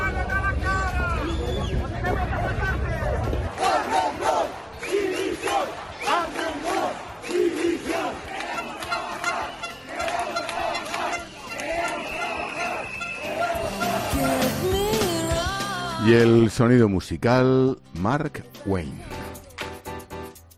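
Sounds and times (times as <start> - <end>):
protest crowd of hospitality workers shouting: 0.0 - 15.0
car horns honking: 8.3 - 15.0
speech: 16.1 - 19.1.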